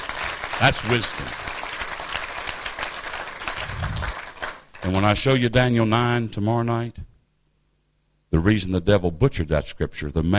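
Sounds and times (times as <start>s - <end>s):
congregation clapping hands during a sermon: 0.0s - 5.4s
speech: 0.6s - 1.5s, 4.9s - 7.0s, 8.3s - 10.3s.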